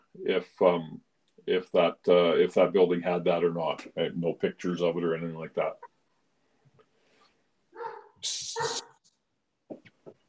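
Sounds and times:
speech: 0.2s - 5.9s, 8.2s - 8.9s
dog barking at someone at the door: 7.8s - 9.0s.

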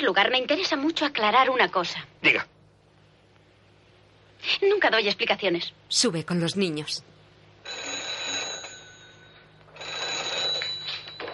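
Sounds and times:
speech: 0.0s - 2.6s, 4.4s - 7.1s
telephone ringing: 7.6s - 11.3s.

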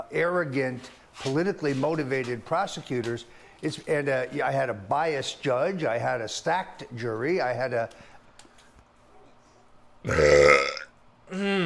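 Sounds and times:
speech: 0.1s - 8.1s, 10.0s - 10.5s, 11.4s - 11.6s
loud drawn-out belch: 10.0s - 11.6s.

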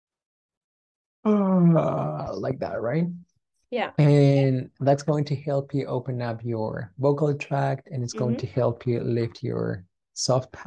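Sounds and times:
speech: 1.2s - 10.6s
person yawning loudly with a moaning tone: 1.3s - 2.2s, 8.2s - 8.5s.

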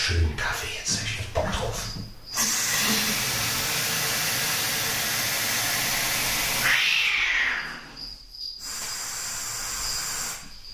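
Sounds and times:
speech: 0.1s - 1.9s
cats fighting and hissing: 2.3s - 10.5s
cat wailing yowl: 6.6s - 7.9s.

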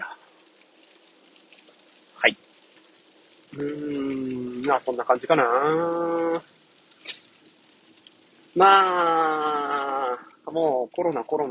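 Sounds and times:
rain falling outside heard from indoors: 0.0s - 11.4s
speech: 2.2s - 2.5s, 3.5s - 6.5s, 8.6s - 9.5s, 10.5s - 11.4s.

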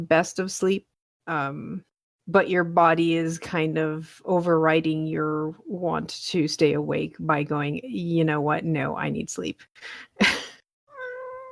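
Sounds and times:
speech: 0.0s - 10.4s
cat meowing: 10.9s - 11.4s.

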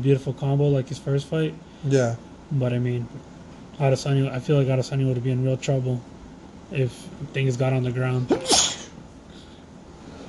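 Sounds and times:
speech: 0.0s - 6.1s, 6.7s - 8.6s
person sneezing: 8.3s - 9.0s.

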